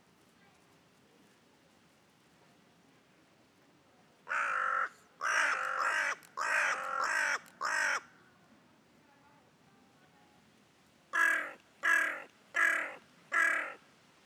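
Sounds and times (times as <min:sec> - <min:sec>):
Carrion Crow Corvus corone cawing: 0:04.3 - 0:08.2, 0:11.2 - 0:13.8.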